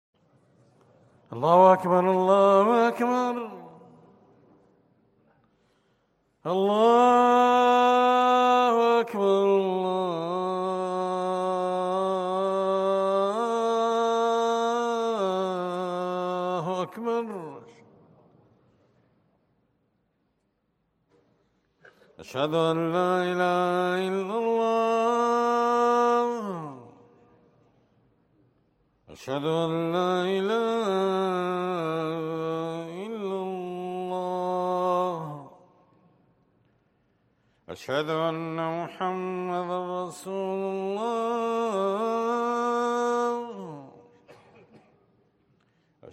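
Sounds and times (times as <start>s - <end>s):
call to prayer: 1.3s - 4.1s, 6.4s - 17.9s, 21.8s - 27.2s, 29.1s - 35.9s, 37.7s - 45.0s.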